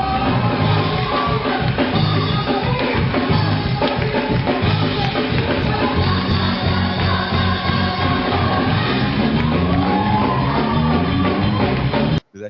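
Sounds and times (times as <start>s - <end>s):
driving rhythmic beat at a church praise break: 0.0s - 12.4s
crowd shouting and yelling at a church praise break: 9.1s - 11.9s.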